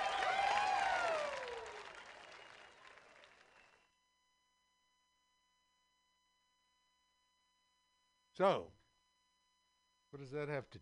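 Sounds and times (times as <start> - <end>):
lively crowd cheering and clapping at a community street dancing event: 0.0 - 3.8
speech: 8.4 - 8.8, 10.1 - 10.7.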